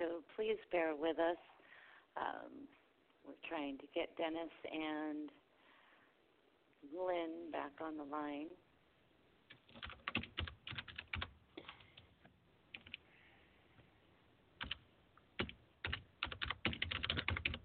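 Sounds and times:
speech: 0.0 - 1.6, 2.2 - 5.4, 6.8 - 8.6, 9.7 - 10.2
typing on a computer keyboard: 9.5 - 11.8, 12.7 - 13.0, 14.6 - 14.8, 15.4 - 17.6.

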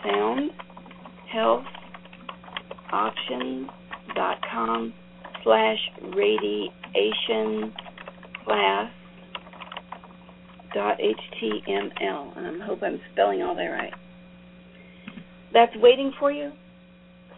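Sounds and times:
typing on a computer keyboard: 0.0 - 12.2
speech: 1.4 - 1.7, 4.7 - 7.9, 8.5 - 8.9, 10.8 - 14.0, 15.5 - 16.6.

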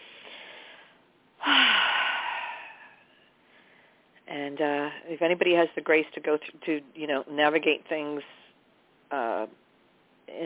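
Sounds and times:
loud airy deep inhalation: 0.0 - 3.1
faint soft breath: 0.0 - 4.2
speech: 4.3 - 8.4, 9.1 - 9.6, 10.3 - 10.4.

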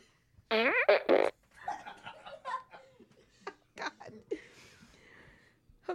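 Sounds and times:
loud buzzy fart: 0.5 - 1.4
quiet laughter: 1.5 - 3.7.

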